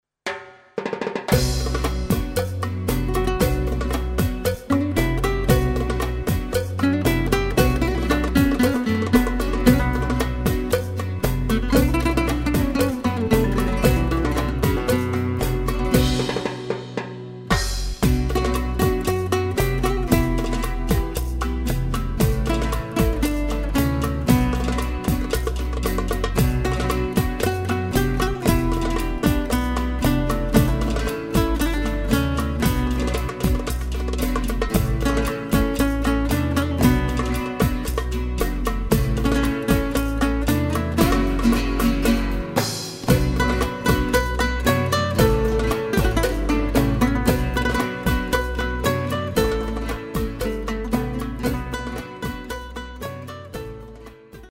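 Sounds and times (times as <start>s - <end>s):
rumba music: 0.3s - 54.4s.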